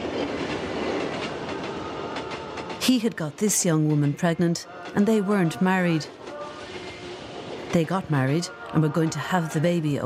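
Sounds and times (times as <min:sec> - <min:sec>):
train wheels clickety-clack on rails: 0:00.0 - 0:07.9
dense constant train rumble: 0:00.0 - 0:10.0
speech: 0:02.9 - 0:06.2, 0:07.7 - 0:10.0.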